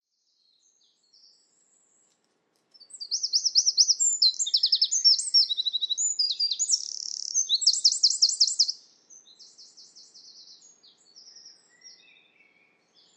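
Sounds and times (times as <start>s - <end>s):
bird singing high wavering trills and buzzy notes: 2.8s - 13.1s.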